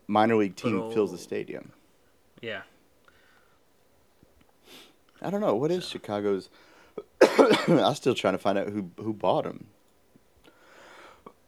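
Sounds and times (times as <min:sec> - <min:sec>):
speech: 0:00.1 - 0:01.8, 0:02.4 - 0:02.7, 0:04.7 - 0:09.8
raspy cough: 0:07.2 - 0:07.8.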